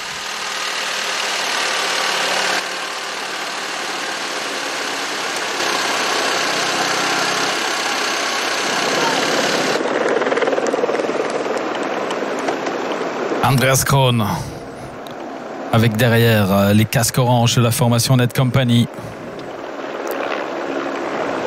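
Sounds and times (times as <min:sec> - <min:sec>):
car engine droning during a road cycling race: 0:00.0 - 0:09.8
road and wind noise: 0:00.0 - 0:21.4
speech: 0:13.5 - 0:14.5, 0:15.7 - 0:19.2.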